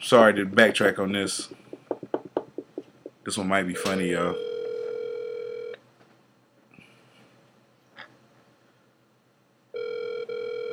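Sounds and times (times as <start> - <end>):
speech: 0.0 - 1.6, 3.2 - 4.5
phone ringback tone: 3.8 - 5.8, 9.8 - 10.7.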